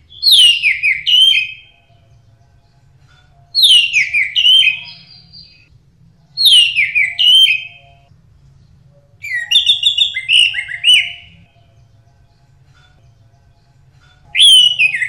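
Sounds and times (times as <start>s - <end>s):
Orange-headed thrush singing varied whistled phrases: 0.1s - 1.8s, 3.6s - 5.7s, 6.4s - 8.1s, 9.2s - 11.6s, 14.3s - 15.0s.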